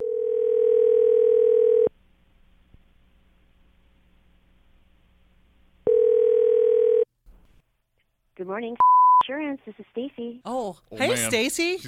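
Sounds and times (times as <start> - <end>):
loud ringback tones over a phone line on an outgoing call: 0.0 - 1.9, 5.8 - 7.1
speech: 8.5 - 11.8.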